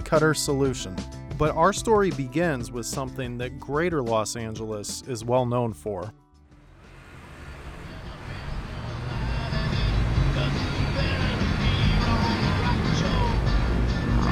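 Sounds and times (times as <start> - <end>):
speech: 0.1 - 6.2
road traffic of cars driving by in Los Angeles: 6.5 - 14.3.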